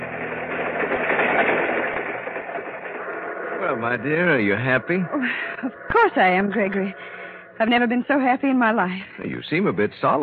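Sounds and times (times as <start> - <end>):
train rumbling in motion: 0.0 - 10.2
speech: 3.7 - 10.2.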